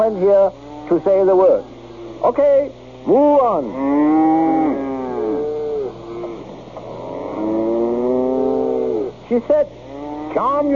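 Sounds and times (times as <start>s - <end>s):
speech: 0.0s - 4.9s, 9.3s - 10.7s
cow mooing: 0.6s - 1.2s, 3.0s - 9.2s, 9.9s - 10.6s.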